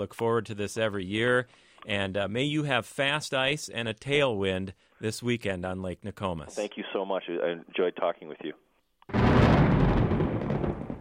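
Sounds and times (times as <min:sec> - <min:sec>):
speech: 0:00.0 - 0:09.3
thunder rumbling: 0:09.1 - 0:11.0.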